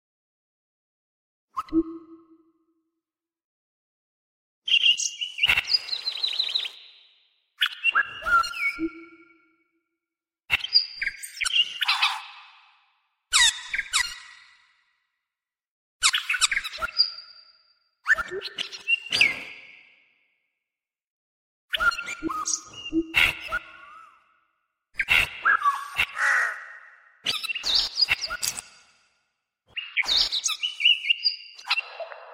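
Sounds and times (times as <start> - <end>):
speech: 1.7 - 2.0, 18.4 - 18.7
computer-generated collage of calls by 55 bird species native to Thailand: 4.7 - 9.3, 10.5 - 12.7, 13.3 - 14.7, 16.0 - 19.9, 21.8 - 24.2, 25.0 - 28.9, 29.7 - 32.3.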